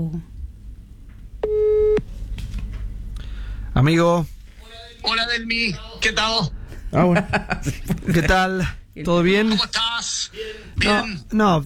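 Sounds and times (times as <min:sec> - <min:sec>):
speech: 0:00.0 - 0:00.3, 0:03.8 - 0:04.3, 0:05.0 - 0:11.6
telephone call signal tone: 0:01.4 - 0:02.0
laughter: 0:07.0 - 0:08.4.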